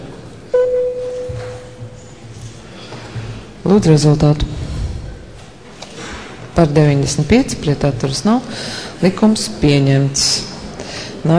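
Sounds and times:
electronic parliament voting signal bell tone: 0:00.5 - 0:01.9
speech: 0:03.6 - 0:04.6, 0:06.6 - 0:10.5.

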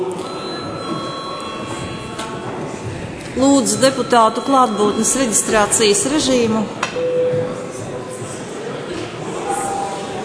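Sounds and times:
parliament chamber electric bell ringing: 0:00.2 - 0:02.6, 0:03.4 - 0:06.6
speech: 0:03.4 - 0:07.6.

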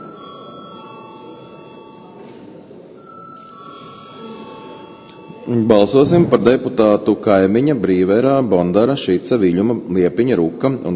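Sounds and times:
electric bell rung to call a vote: 0:00.0 - 0:02.3, 0:03.0 - 0:06.0
speech: 0:05.5 - 0:10.9.

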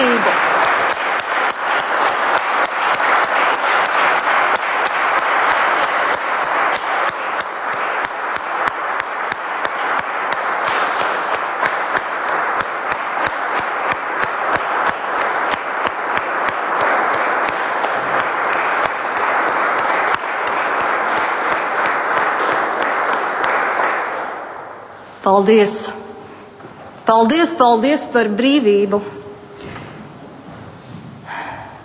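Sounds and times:
large crowd of deputies giving standing applause in a parliament hall: 0:00.0 - 0:24.7
speech: 0:25.4 - 0:25.8, 0:27.1 - 0:29.2.

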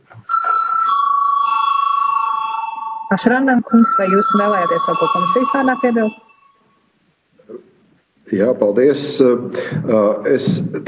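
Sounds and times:
electronic bell ringing to call a parliamentary vote: 0:00.3 - 0:06.7
speech: 0:03.1 - 0:06.3, 0:08.3 - 0:10.8.

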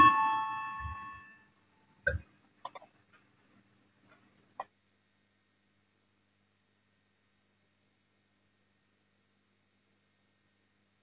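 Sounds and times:
parliament electronic voting bell tone: 0:00.0 - 0:01.3.

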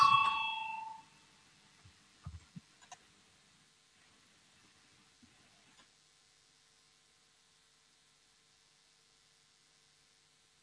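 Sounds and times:
voting bell ringing in parliament chamber: 0:00.0 - 0:01.1.

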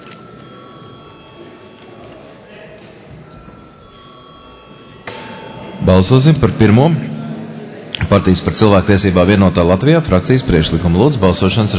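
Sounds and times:
electric bell ringing in a parliament chamber before a vote: 0:00.0 - 0:02.1, 0:03.2 - 0:09.9
murmur of voices in a parliament chamber: 0:00.0 - 0:11.7
speech: 0:05.9 - 0:07.1, 0:08.1 - 0:11.7.

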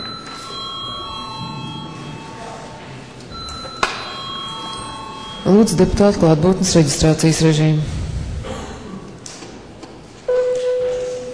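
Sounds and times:
electric bell rung to call a session break: 0:00.0 - 0:06.8
speech: 0:05.5 - 0:08.0.

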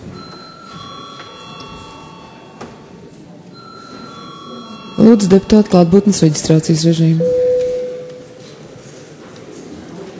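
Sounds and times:
electric parliament session bell ringing: 0:00.2 - 0:02.9, 0:03.6 - 0:06.2, 0:07.2 - 0:08.4
speech: 0:05.0 - 0:07.4.

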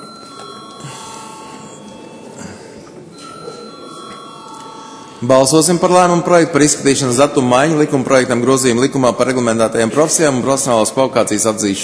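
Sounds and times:
electric voting bell ringing in the Latvian parliament chamber: 0:00.0 - 0:02.4, 0:03.1 - 0:06.1
speech: 0:05.2 - 0:11.8.

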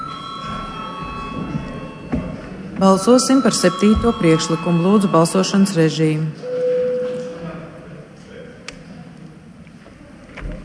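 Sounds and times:
chairman's bell ringing in a parliament session: 0:00.0 - 0:07.1
speech: 0:02.8 - 0:06.4.

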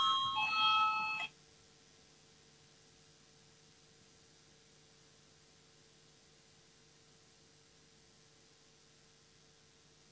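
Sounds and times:
electronic parliament voting bell ringing: 0:00.0 - 0:01.3
quiet hum: 0:00.0 - 0:10.1.

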